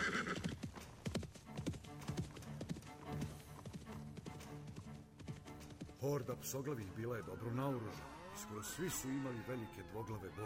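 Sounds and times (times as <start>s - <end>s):
donkey hooves clip-clopping: 0.0s - 7.3s
speech: 6.0s - 10.4s.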